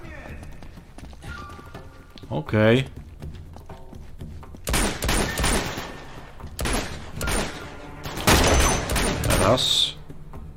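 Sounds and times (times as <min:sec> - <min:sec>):
speech: 0:02.3 - 0:03.0, 0:09.5 - 0:09.9
video game gunfire during a firefight: 0:04.7 - 0:06.0, 0:08.2 - 0:09.6.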